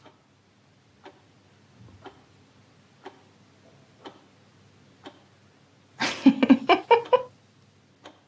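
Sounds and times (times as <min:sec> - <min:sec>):
clock ticking: 0:00.0 - 0:01.4, 0:02.0 - 0:02.4, 0:03.0 - 0:05.5, 0:06.9 - 0:07.3, 0:08.0 - 0:08.2
laughter: 0:06.0 - 0:07.3.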